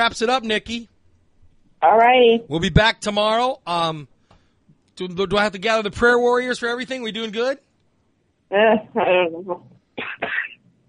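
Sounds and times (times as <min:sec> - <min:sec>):
speech: 0:00.0 - 0:00.9, 0:01.8 - 0:04.1, 0:05.0 - 0:07.6, 0:08.5 - 0:10.4
person clearing throat: 0:10.0 - 0:10.6
person coughing: 0:10.0 - 0:10.6.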